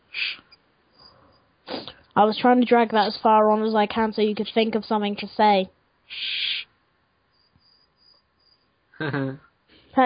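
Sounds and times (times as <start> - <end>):
short high-pitched cricket-like chirp: 0.3 - 1.4, 7.3 - 8.7
speech: 2.2 - 6.3, 9.0 - 10.0.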